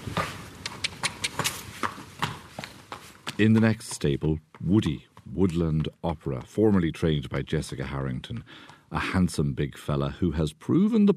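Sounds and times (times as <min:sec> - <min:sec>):
horse hooves clopping on a hard surface in a livery yard outside Rattoath, County Meath: 0:00.0 - 0:09.8
speech: 0:03.4 - 0:11.1.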